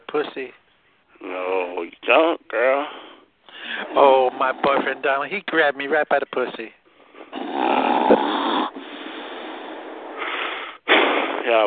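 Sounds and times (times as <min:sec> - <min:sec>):
speech: 0:00.1 - 0:00.6, 0:01.2 - 0:03.0, 0:03.9 - 0:06.8, 0:11.4 - 0:11.6
person snoring: 0:07.3 - 0:10.8.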